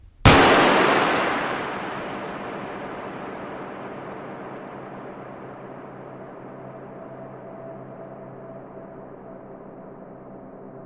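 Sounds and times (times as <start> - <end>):
sharp loud gunshot-like bang opening a musical piece: 0.0 - 8.2.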